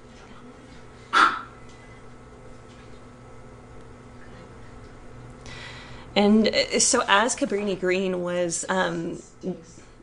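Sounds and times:
large dog barking: 1.1 - 1.5
speech: 6.2 - 9.8.

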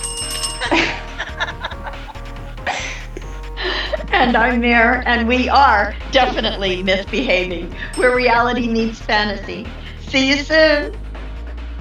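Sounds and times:
steady bell ringing: 0.0 - 2.4, 7.7 - 9.7
people laughing and chuckling: 0.6 - 9.7
speech: 4.2 - 11.0.

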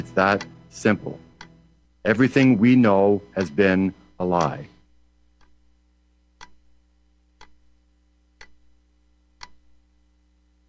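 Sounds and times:
speech: 0.0 - 1.3, 2.0 - 4.7
clock ticking: 0.0 - 10.6.

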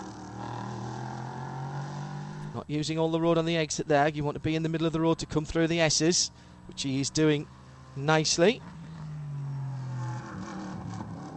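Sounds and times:
race car engine braking and downshifting into a turn: 0.0 - 11.3
speech: 2.6 - 8.8.

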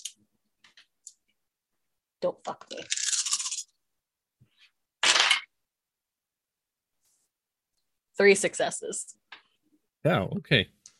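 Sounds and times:
speech: 2.2 - 3.0, 8.2 - 9.2, 10.0 - 10.8
six dice clattering as they are rolled for a game check: 2.8 - 3.7, 5.0 - 5.5.

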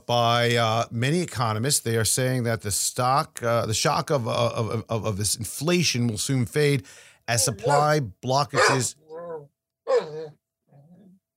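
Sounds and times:
speech: 0.1 - 9.5
basset hound throaty bay-like yowl: 7.4 - 7.9, 8.6 - 11.2.

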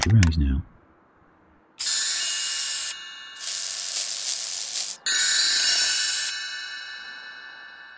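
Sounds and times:
speech: 0.0 - 0.8
loud spray bursts hissing: 1.8 - 6.4.

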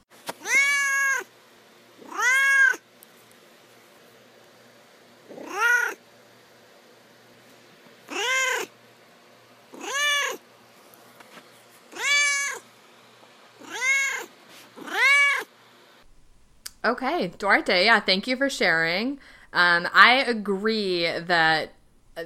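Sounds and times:
cat meowing: 0.4 - 1.3, 2.0 - 2.8, 5.3 - 6.0, 8.1 - 8.7, 9.7 - 10.4, 11.9 - 12.6, 13.6 - 15.5
speech: 16.8 - 22.2.

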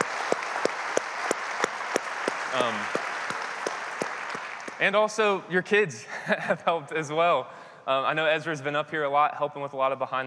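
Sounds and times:
congregation applauding: 0.0 - 5.4
speech: 2.5 - 3.0, 4.8 - 10.2.

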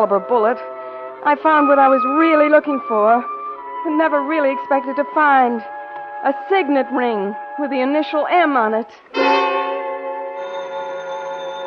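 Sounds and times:
speech: 0.0 - 9.4
telephone bell ringing on a private-number line: 9.2 - 11.6.

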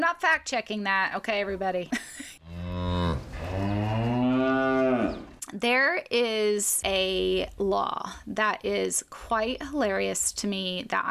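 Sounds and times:
speech: 0.1 - 2.3, 5.5 - 11.0
cow mooing in a California dairy commercial: 2.4 - 5.4.

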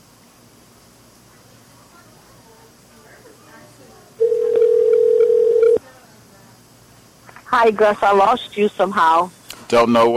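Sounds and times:
faint hum: 0.0 - 10.1
telephone tone on a call back: 4.2 - 5.8
speech: 7.6 - 10.1.

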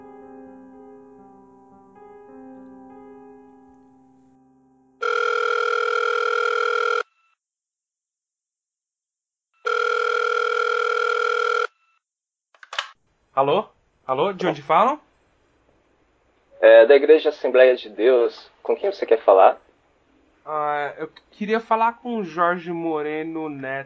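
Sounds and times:
telephone ringback tone while calling a number: 5.0 - 7.3, 9.6 - 11.9
speech: 13.4 - 15.0, 16.7 - 19.6, 20.4 - 23.8.

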